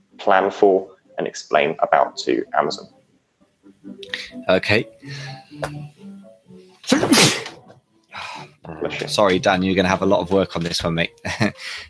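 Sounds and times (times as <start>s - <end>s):
speech: 0.2s - 3.0s, 4.1s - 6.0s, 6.9s - 7.4s, 8.7s - 11.8s
single loud sneeze: 6.9s - 7.6s
quieter murmurs of speech: 8.6s - 9.4s.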